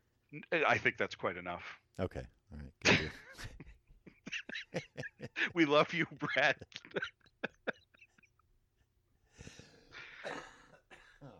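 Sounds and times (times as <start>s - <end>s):
speech: 0.3s - 3.6s, 4.7s - 7.2s
person coughing: 2.8s - 3.3s, 10.2s - 11.3s
breathy wheezing: 9.3s - 11.3s.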